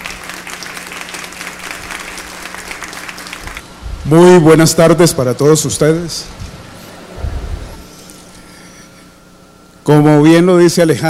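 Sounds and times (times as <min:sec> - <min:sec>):
audience applause of many hands clapping: 0:00.0 - 0:03.6
speech: 0:04.0 - 0:06.4, 0:09.9 - 0:11.0.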